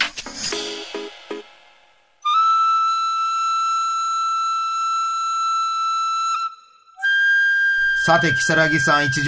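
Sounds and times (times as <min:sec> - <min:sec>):
tenpuku small bamboo end-blown flute from Kagoshima Japan playing held notes: 0:02.2 - 0:09.2
speech: 0:08.0 - 0:09.2.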